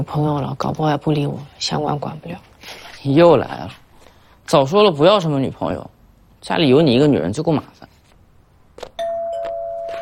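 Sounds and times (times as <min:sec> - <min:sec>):
speech: 0:00.0 - 0:03.8, 0:04.5 - 0:07.9
doorbell chime: 0:09.0 - 0:10.0.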